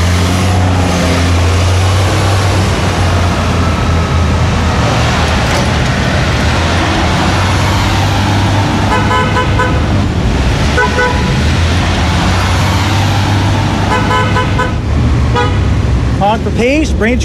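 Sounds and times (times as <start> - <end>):
low rumble of engines and busy street traffic: 0.0 - 17.2
short car horn toots and double beeps in town: 8.9 - 9.9, 10.7 - 11.4, 13.9 - 15.7
speech: 16.6 - 17.2.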